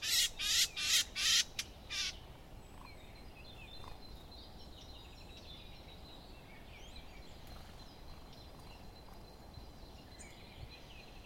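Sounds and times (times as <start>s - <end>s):
Eurasian blackcap Sylvia atricapilla uttering rasping calls: 0.0s - 2.2s.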